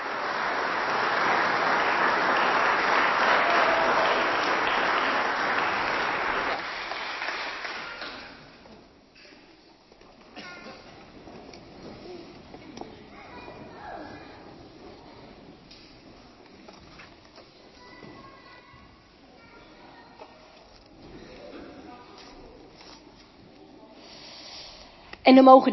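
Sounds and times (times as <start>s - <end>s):
congregation applauding: 0.0s - 8.6s
faint room murmur: 0.0s - 25.7s
speech: 25.3s - 25.7s.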